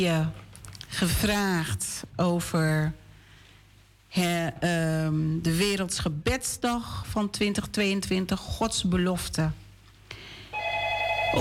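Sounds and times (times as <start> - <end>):
speech: 0.0 - 3.0, 4.1 - 9.6
low hum: 0.0 - 11.3
telephone ringing with a steady electronic tone: 10.5 - 11.3.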